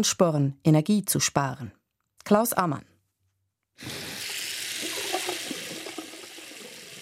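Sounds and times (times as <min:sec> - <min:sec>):
speech: 0:00.0 - 0:02.9, 0:03.8 - 0:04.1
water running from a tap: 0:03.8 - 0:07.0.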